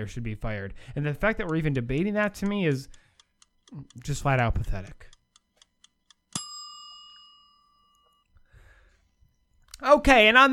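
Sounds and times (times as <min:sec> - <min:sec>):
speech: 0:00.0 - 0:03.0, 0:03.7 - 0:05.2, 0:09.8 - 0:10.5
timer ticking: 0:01.2 - 0:06.6
loud bright timer bell ding: 0:06.4 - 0:08.2.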